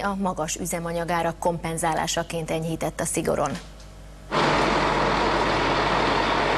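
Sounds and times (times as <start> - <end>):
speech: 0.0 - 3.8
truck engine rumble rolling into its depot: 4.3 - 6.5.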